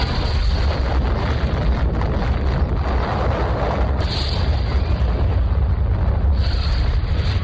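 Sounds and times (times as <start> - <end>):
atomic bomb explosion over Hiroshima, deep rumbling roar: 0.0 - 7.4.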